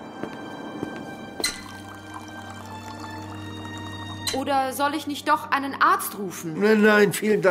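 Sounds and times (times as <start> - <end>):
glass clinking: 1.4 - 4.4
water pouring into a glass: 1.4 - 4.4
speech: 4.3 - 7.5.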